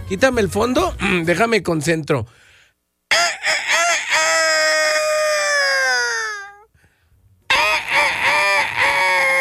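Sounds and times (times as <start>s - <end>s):
speech: 0.1s - 2.5s
person imitating a rooster crowing: 3.1s - 6.7s, 7.5s - 9.4s.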